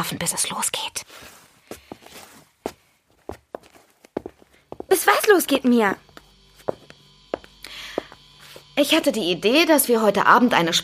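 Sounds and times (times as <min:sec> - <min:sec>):
speech: 0:00.0 - 0:01.4, 0:04.9 - 0:06.0, 0:08.8 - 0:10.8
footsteps walking toward a café kitchen: 0:01.0 - 0:08.8.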